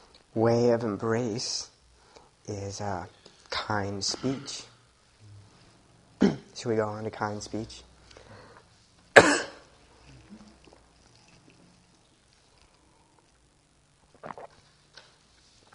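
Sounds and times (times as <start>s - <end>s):
speech: 0.4s - 1.7s, 2.4s - 4.7s, 6.2s - 7.9s
person coughing: 4.2s - 4.7s, 6.2s - 6.5s, 9.2s - 9.7s.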